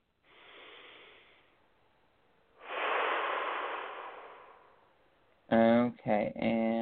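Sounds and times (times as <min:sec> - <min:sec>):
deep breath in during a guided breathing exercise: 0:00.2 - 0:01.7, 0:02.6 - 0:05.3
speech: 0:05.5 - 0:06.8.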